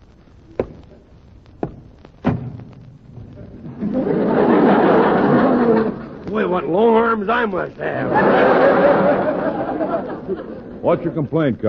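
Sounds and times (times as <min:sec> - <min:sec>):
door slamming shut: 0:02.2 - 0:02.7
laughter: 0:03.6 - 0:06.6, 0:07.8 - 0:11.3
speech: 0:06.6 - 0:11.6.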